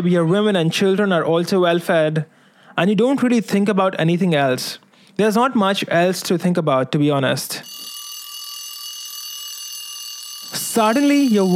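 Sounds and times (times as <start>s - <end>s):
speech: 0.0s - 7.7s, 10.8s - 11.5s
alarm clock ringing: 7.6s - 11.5s.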